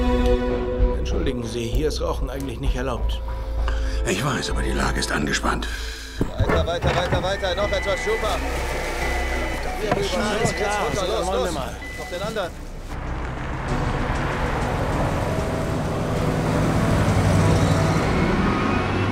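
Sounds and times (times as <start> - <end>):
heavy semi-trailer truck engine rumble and road noise: 0.0 - 19.1
speech: 1.1 - 9.1, 9.8 - 12.6
black SUV rolling past: 11.8 - 19.1.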